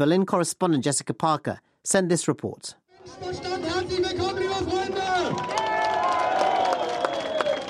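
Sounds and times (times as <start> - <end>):
speech: 0.0 - 4.8
large crowd cheering and shouting at a political rally: 3.0 - 7.6.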